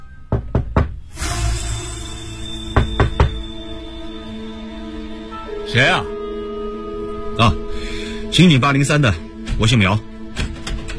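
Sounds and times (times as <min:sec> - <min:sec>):
knocking on an apartment door in a crowded residential building: 0:00.3 - 0:01.0, 0:02.8 - 0:03.4
speech: 0:05.7 - 0:06.2, 0:07.4 - 0:10.1.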